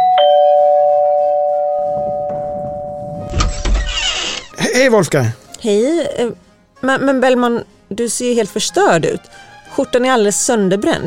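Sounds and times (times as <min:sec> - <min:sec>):
doorbell chiming with an electronic tone: 0:00.0 - 0:03.3
rattling and shuffling: 0:01.9 - 0:05.2
speech: 0:04.9 - 0:11.0.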